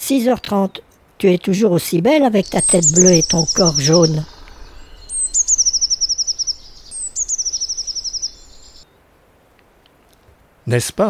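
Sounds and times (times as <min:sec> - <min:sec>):
speech: 0:00.1 - 0:04.3, 0:10.7 - 0:11.0
Eurasian Blue Tit song with thin high notes and descending trill: 0:02.3 - 0:08.8.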